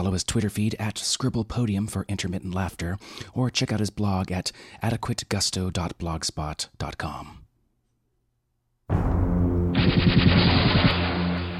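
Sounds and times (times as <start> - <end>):
speech: 0.0 - 7.4
particle cannon shot fired across the Rio Grande: 8.9 - 11.5.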